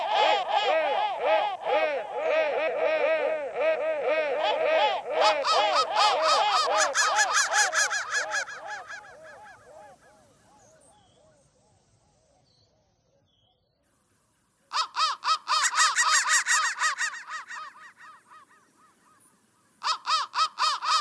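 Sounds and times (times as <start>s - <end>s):
crow cawing: 0.0s - 9.9s, 14.7s - 19.0s, 19.8s - 20.9s.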